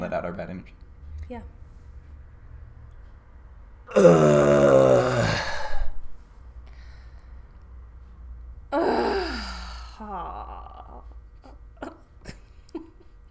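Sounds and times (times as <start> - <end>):
speech: 0.0 - 1.6, 3.9 - 4.7
group of people groaning together: 3.9 - 6.0, 8.7 - 11.0.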